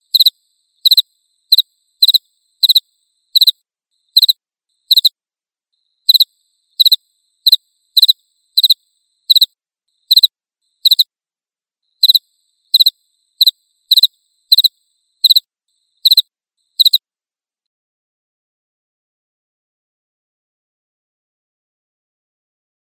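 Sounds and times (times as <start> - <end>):
crickets chirping: 0.0 - 5.1, 5.7 - 11.0, 11.8 - 17.0.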